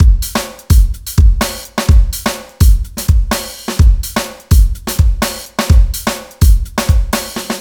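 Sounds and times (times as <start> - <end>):
funk music loops: 0.0 - 7.5.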